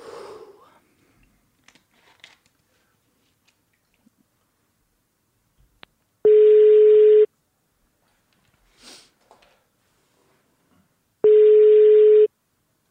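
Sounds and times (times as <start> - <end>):
faint sniff: 0.0 - 0.8, 8.7 - 9.2
ringback tones of an outgoing phone call to a mobile: 6.2 - 7.3, 11.2 - 12.3.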